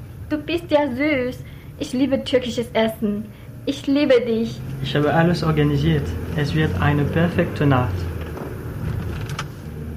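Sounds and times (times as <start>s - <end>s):
speech: 0.3s - 8.1s
car engine rumbling: 4.3s - 9.9s.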